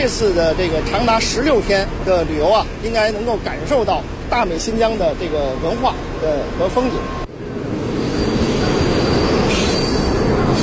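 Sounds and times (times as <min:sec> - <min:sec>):
speech: 0:00.0 - 0:07.2
rail rumbling: 0:00.0 - 0:10.6
tourist special train wheels squealing on departure: 0:07.8 - 0:10.6.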